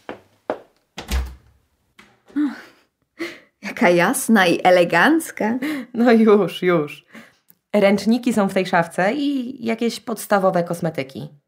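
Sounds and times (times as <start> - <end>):
bathroom door knocking as it settles: 1.0 - 1.4
bathroom door heavy low thunk: 1.0 - 1.5
bathroom door creaking: 1.0 - 2.4
speech: 2.3 - 2.7, 3.8 - 11.4.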